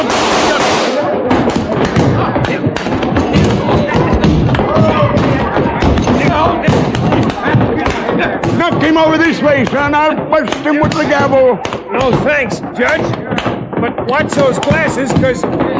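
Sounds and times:
gunshots from a gun grabbed off a table: 0.0 - 15.7
loud dense commotion: 0.0 - 15.7
speech: 9.0 - 15.7.

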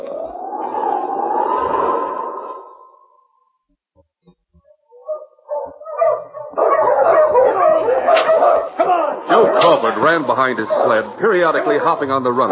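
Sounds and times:
pack of huskies giving a long wavering howl: 0.0 - 3.4, 4.8 - 12.5
huskies giving excited yips and barks: 4.6 - 12.5
speech: 9.8 - 12.5.

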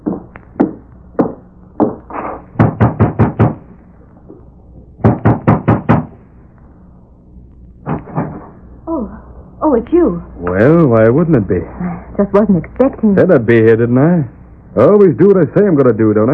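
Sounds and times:
knocking on a wooden door: 0.0 - 2.0, 2.6 - 3.6, 5.0 - 6.1
speech: 9.7 - 16.3.

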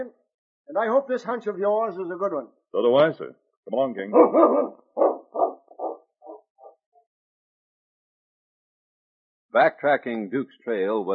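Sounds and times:
speech: 0.0 - 5.1, 9.5 - 11.1
dog barking: 4.1 - 6.7.

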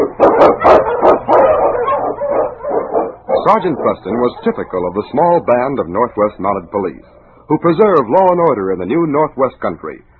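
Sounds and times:
husky sled lead dog barking and howling: 0.0 - 7.4
speech: 3.5 - 10.1.

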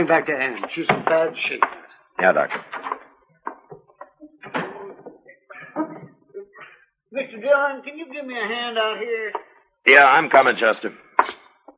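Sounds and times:
speech: 0.0 - 3.0, 7.4 - 11.0
wooden door bumping and scraping: 0.0 - 5.2.

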